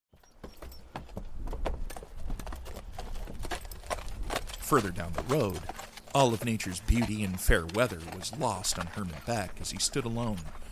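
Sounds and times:
horse hooves clip-clopping while pulling a buggy along a road: 0.1 - 10.6
buggy rolling along a road: 2.8 - 10.6
speech: 4.7 - 10.6.

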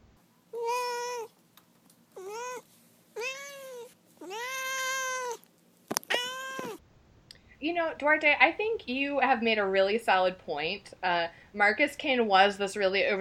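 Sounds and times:
cat meowing insistently: 0.6 - 1.3, 2.2 - 5.4, 6.0 - 6.8
speech: 7.6 - 13.1.

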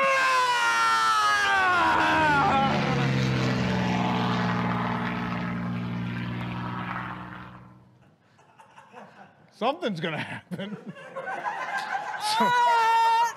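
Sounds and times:
propeller airplane droning overhead: 0.2 - 8.1
laughter: 8.1 - 9.5, 10.2 - 13.3
speech: 9.6 - 11.2, 12.4 - 12.8.

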